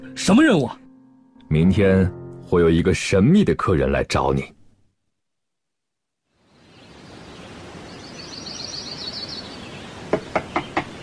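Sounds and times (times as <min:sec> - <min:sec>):
speech: 0:00.0 - 0:00.8, 0:01.5 - 0:04.6
faint birds chirping: 0:06.3 - 0:11.0
steady room hiss: 0:06.3 - 0:11.0
urgent knocking on a door: 0:10.1 - 0:11.0.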